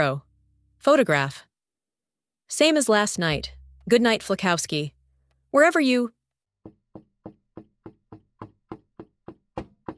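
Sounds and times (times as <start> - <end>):
speech: 0.0 - 1.5, 2.5 - 6.8
knuckles knocking on a steel door: 6.6 - 9.9.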